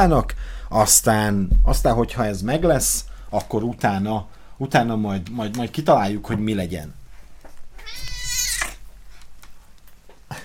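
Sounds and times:
speech: 0:00.0 - 0:07.0
cat meowing while sitting on a desk: 0:07.8 - 0:08.8.

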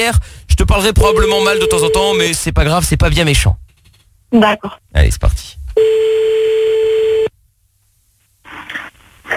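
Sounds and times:
speech: 0:00.0 - 0:03.6, 0:04.3 - 0:06.4
steady telephone tone as a call is dialed: 0:01.1 - 0:02.1, 0:05.8 - 0:07.3.

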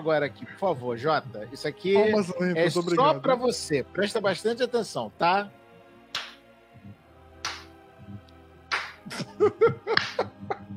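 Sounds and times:
speech: 0:00.0 - 0:05.6
slow clapping: 0:06.1 - 0:06.5, 0:07.4 - 0:07.8, 0:08.7 - 0:09.1, 0:09.9 - 0:10.4
burst of laughter: 0:09.1 - 0:10.7.

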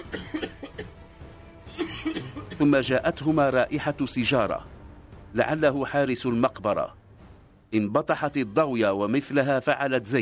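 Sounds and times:
dry coughs from someone near a cemetery: 0:00.0 - 0:01.0, 0:01.7 - 0:02.6
speech: 0:02.6 - 0:04.7, 0:05.3 - 0:07.0, 0:07.7 - 0:10.2.

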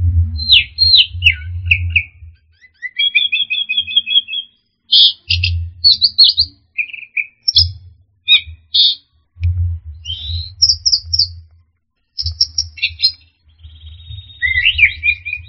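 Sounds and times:
low rumbling noise: 0:00.0 - 0:02.5, 0:05.4 - 0:05.9, 0:09.2 - 0:11.6, 0:13.4 - 0:15.4
orange-headed thrush chirps, whistles and descending warble: 0:00.4 - 0:09.0, 0:10.0 - 0:11.4, 0:12.2 - 0:15.4.

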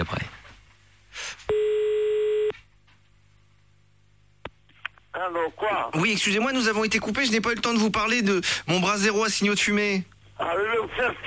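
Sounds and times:
steady buzzy telephone tone while dialing back a caller: 0:01.5 - 0:02.6
speech: 0:05.5 - 0:11.2.

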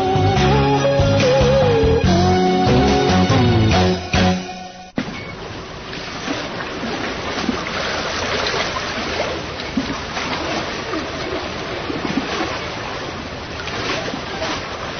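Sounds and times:
music: 0:00.0 - 0:05.0
wooden rowboat being rowed along a river into a creek: 0:04.9 - 0:14.9.

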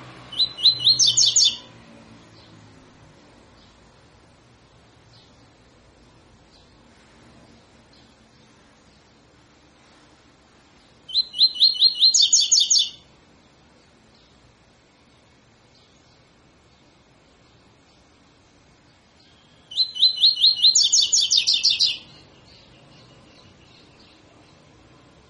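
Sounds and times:
Double-collared seedeater tutor song in tui tui fibra style: 0:00.2 - 0:01.7, 0:11.0 - 0:13.1, 0:19.0 - 0:24.8.

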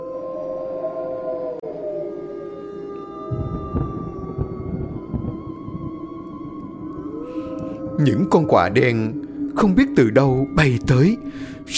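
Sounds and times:
wolves howling: 0:00.0 - 0:11.7
low rumbling noise: 0:03.2 - 0:09.6
speech: 0:08.0 - 0:11.7.

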